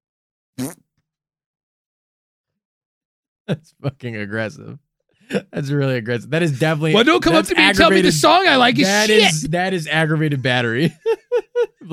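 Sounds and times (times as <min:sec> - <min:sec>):
short loud wet-sounding fart: 0:00.6 - 0:00.9
speech: 0:03.5 - 0:11.9
laughter: 0:06.5 - 0:09.5, 0:10.7 - 0:11.9.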